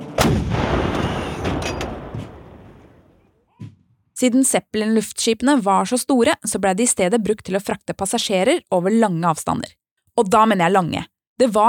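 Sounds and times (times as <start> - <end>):
heavy cannon blast: 0.0 - 3.2
artillery thuds: 0.2 - 2.9
speech: 4.2 - 11.6.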